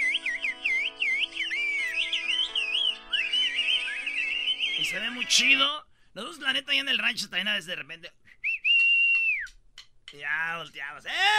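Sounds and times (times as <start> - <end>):
woman whistling in a whistled language: 0.0 - 4.8, 8.4 - 9.5
speech: 4.9 - 8.2, 10.1 - 11.3.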